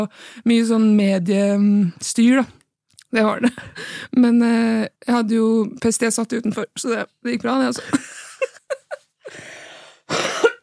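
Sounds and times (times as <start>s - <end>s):
speech: 0.0s - 8.5s
person coughing: 7.8s - 8.2s, 10.1s - 10.6s.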